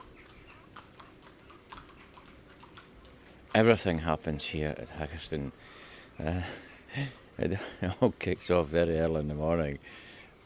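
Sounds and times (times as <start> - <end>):
ponies' hooves clip-clopping at Haggerston: 0.0 - 4.3
outdoor hum at Haggerston beside a big line of trees: 0.0 - 10.4
speech: 3.6 - 10.1.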